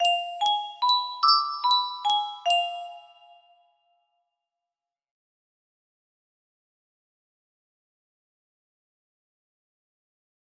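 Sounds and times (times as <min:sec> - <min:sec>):
chimes playing a melody: 0:00.0 - 0:03.6.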